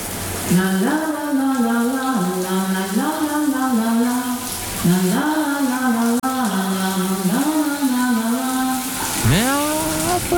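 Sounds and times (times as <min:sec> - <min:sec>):
shower water spraying: 0:00.0 - 0:10.3
speech: 0:00.5 - 0:01.4
person humming or singing a wordless tune: 0:09.2 - 0:10.3.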